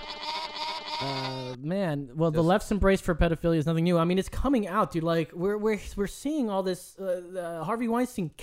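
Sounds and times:
sheep bleating: 0:00.0 - 0:01.6
speech: 0:01.0 - 0:08.4.

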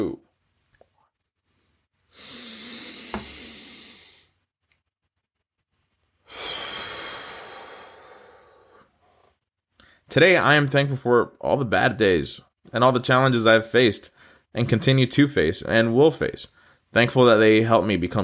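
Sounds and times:
speech: 0:00.0 - 0:00.2, 0:10.1 - 0:18.2
deep breaths taken slowly and together: 0:01.5 - 0:04.4, 0:06.2 - 0:10.1, 0:14.1 - 0:14.5, 0:16.5 - 0:16.9.

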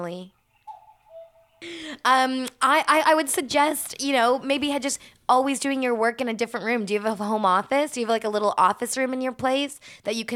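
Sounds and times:
speech: 0:00.0 - 0:00.4, 0:01.6 - 0:10.3
cuckoo clock chiming: 0:00.6 - 0:01.6.

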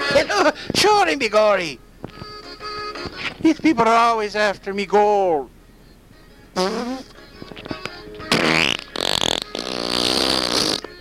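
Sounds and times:
speech: 0:00.1 - 0:01.9, 0:03.4 - 0:05.6, 0:06.6 - 0:07.1
comedic fart sound effects: 0:06.6 - 0:07.2, 0:08.3 - 0:10.9.

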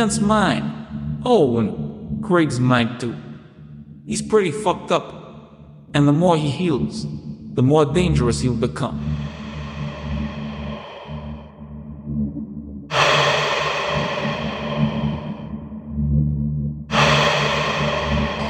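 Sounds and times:
heavy hard breathing: 0:00.0 - 0:02.2, 0:08.8 - 0:16.0, 0:16.9 - 0:18.4
speech: 0:00.0 - 0:03.2, 0:04.1 - 0:05.2, 0:05.9 - 0:09.3
low steady droning hum: 0:00.0 - 0:07.6, 0:08.2 - 0:18.4.

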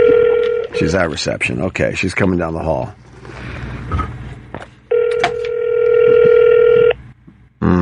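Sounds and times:
telephone ringback tone on an outgoing call: 0:00.0 - 0:00.8, 0:04.9 - 0:07.0
speech: 0:00.8 - 0:04.2.

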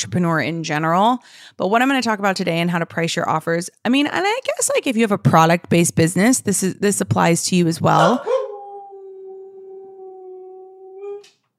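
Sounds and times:
speech: 0:00.0 - 0:08.4
female husky howling: 0:08.0 - 0:11.4.

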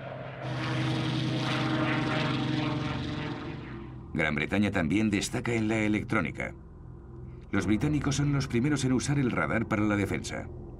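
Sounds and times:
Spitfire fighter plane propeller engine roaring: 0:00.0 - 0:04.2
speech: 0:04.2 - 0:06.6, 0:07.5 - 0:10.7.

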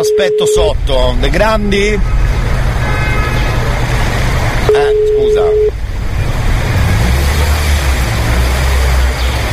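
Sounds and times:
speech: 0:00.0 - 0:02.4
street traffic rumbling outside: 0:00.6 - 0:09.5
car horn toot: 0:01.8 - 0:04.0, 0:04.7 - 0:05.7.

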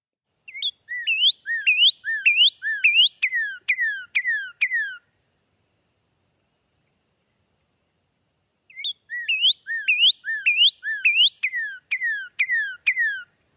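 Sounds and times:
Northern Cardinal song in spring: 0:00.4 - 0:05.2, 0:08.7 - 0:13.4.

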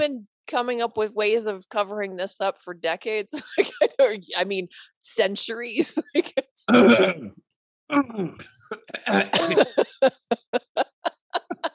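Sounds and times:
speech: 0:00.0 - 0:10.6
laughter: 0:03.4 - 0:04.0, 0:08.7 - 0:11.7
harsh coughing: 0:06.2 - 0:07.4, 0:08.5 - 0:10.5.

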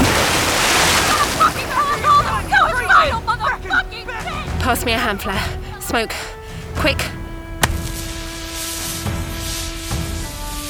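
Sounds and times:
indistinct voices shouting: 0:00.0 - 0:09.8
laughter: 0:00.0 - 0:09.8
boat riding through ocean waves: 0:00.0 - 0:10.6
speech: 0:04.7 - 0:07.2.

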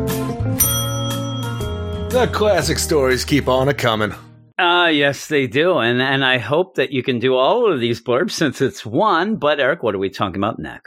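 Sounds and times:
bright bicycle-style bell ringing: 0:00.6 - 0:02.8
speech: 0:02.1 - 0:10.8.

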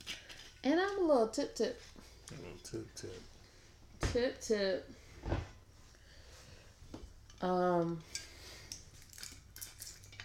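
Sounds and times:
speech: 0:00.6 - 0:03.4, 0:04.1 - 0:05.5, 0:07.4 - 0:08.2
metallic utensils clinking against dishes or a glass while making a drink: 0:07.3 - 0:10.2.

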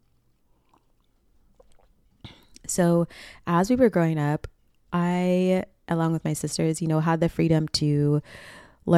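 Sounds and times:
person sipping and swallowing water with wet mouth clicks: 0:00.0 - 0:02.7
speech: 0:02.7 - 0:08.9.

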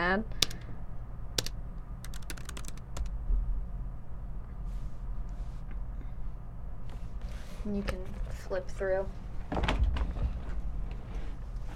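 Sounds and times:
low hum: 0:00.0 - 0:11.7
speech: 0:00.1 - 0:00.4, 0:07.6 - 0:09.8
computer keyboard typing: 0:00.4 - 0:00.6, 0:01.4 - 0:03.1.

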